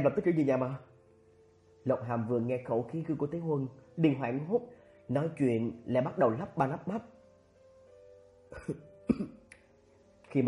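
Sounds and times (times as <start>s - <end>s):
speech: 0.0s - 0.9s, 1.8s - 7.1s, 8.5s - 9.4s
man coughing deliberately beside someone on a phone call: 8.5s - 9.4s.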